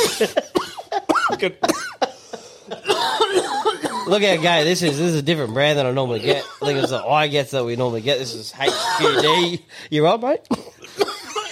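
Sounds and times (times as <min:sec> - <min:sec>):
harsh rasping coughing fit: 0:00.0 - 0:05.2, 0:08.6 - 0:09.6, 0:10.5 - 0:11.5
speech: 0:00.2 - 0:00.5, 0:01.4 - 0:01.9, 0:04.1 - 0:10.7.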